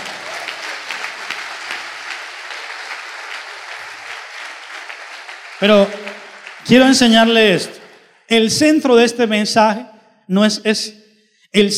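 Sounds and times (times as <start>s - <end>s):
church audience applauding: 0.0s - 8.1s
speech: 5.6s - 6.0s, 6.7s - 11.7s.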